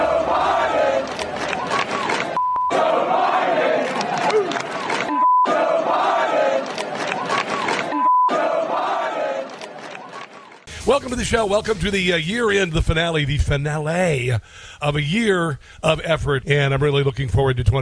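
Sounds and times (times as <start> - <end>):
large crowd chanting a slogan in unison: 0.0 - 10.7
short electronic beep: 2.4 - 2.8, 5.1 - 5.5, 7.9 - 8.3
speech: 11.0 - 17.8.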